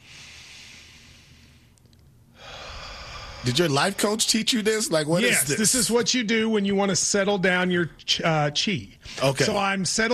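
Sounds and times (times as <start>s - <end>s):
slow deep breathing during a yoga class warm-up: 0.0s - 3.6s
speech: 3.4s - 10.1s.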